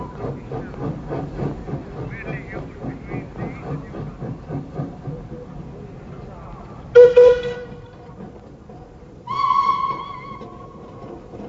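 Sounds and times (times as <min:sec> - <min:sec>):
train chugging at a railway station in Lyon: 0:00.0 - 0:11.4
train whistle blasts at a railway station in Lyon: 0:07.0 - 0:07.8, 0:09.3 - 0:10.8.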